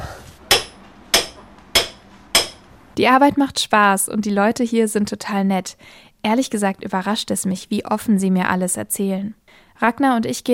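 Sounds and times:
hammer blows on a boat: 0.5 - 2.7
speech: 3.0 - 10.5.

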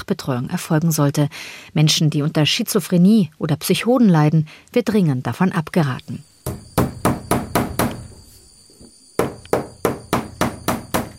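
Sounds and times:
speech: 0.0 - 6.6
hammer striking thick nails into a wooden wall: 6.4 - 8.1, 9.2 - 11.1.

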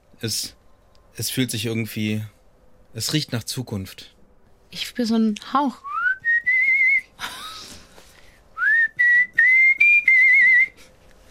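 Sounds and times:
speech: 0.2 - 0.6, 1.2 - 5.9
person whistling a short bright melody: 5.8 - 7.1, 8.6 - 10.9.

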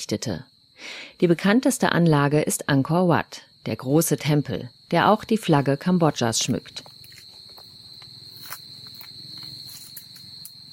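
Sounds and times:
speech: 0.0 - 6.9
steady shrill insect drone: 0.0 - 10.7
soft footsteps walking in a temple: 6.0 - 10.7.

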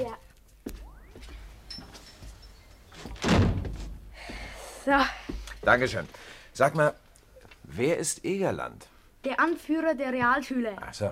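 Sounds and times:
heavier rattling thud of a door closing: 3.0 - 4.0
speech: 4.9 - 7.0, 7.7 - 11.0.

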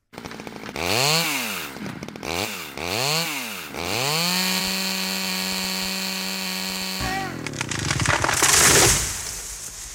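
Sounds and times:
chainsaw revving and cutting a tree: 0.0 - 9.1
tree cracking as it falls: 7.0 - 9.9.

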